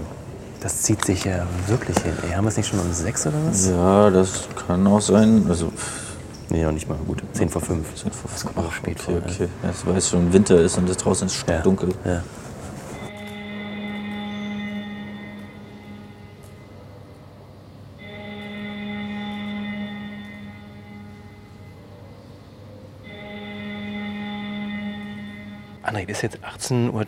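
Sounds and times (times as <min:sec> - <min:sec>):
speech: 0:00.6 - 0:12.5, 0:26.1 - 0:27.0
parliamentary division bell summoning members to vote: 0:13.0 - 0:16.9, 0:18.0 - 0:22.3, 0:23.1 - 0:26.0.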